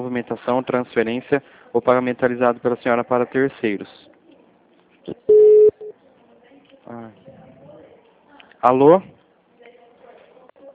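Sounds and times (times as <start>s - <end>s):
speech: 0.0s - 4.1s, 5.0s - 5.3s, 8.6s - 9.2s
phone keypad button beep: 5.3s - 5.9s.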